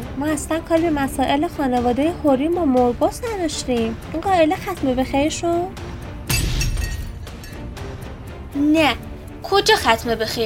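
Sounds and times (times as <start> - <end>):
speech: 0.2 - 5.9, 8.6 - 10.4
glass and vases smashed in a studio: 6.3 - 7.7
glass shards tinkling as they settle: 6.3 - 7.7.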